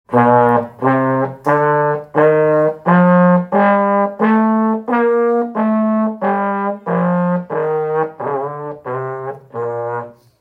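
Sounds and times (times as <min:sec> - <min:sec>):
trombone: 0:00.1 - 0:10.3.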